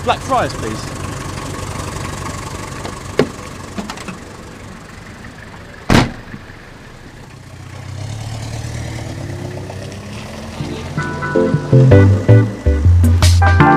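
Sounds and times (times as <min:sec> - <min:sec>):
speech: 0:00.0 - 0:01.0, 0:11.8 - 0:12.2
taxi engine idling in central London: 0:00.0 - 0:13.6
sharp loud thump: 0:05.9 - 0:06.4.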